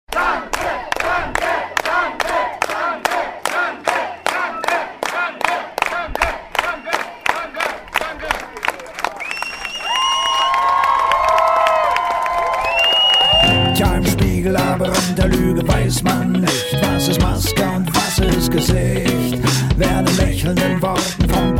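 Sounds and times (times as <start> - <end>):
audience cheering and shouting: 0.1 - 15.4
audience clapping in rhythmic unison: 0.1 - 21.4.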